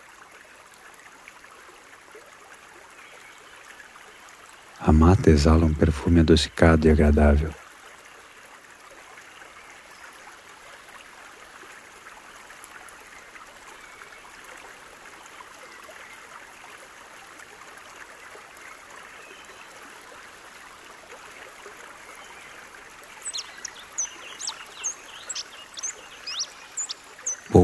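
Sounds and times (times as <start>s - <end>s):
calm shallow creek flowing, heard from a bridge: 0.0s - 27.6s
speech: 4.8s - 7.6s
birds singing beside a creek: 22.2s - 27.6s.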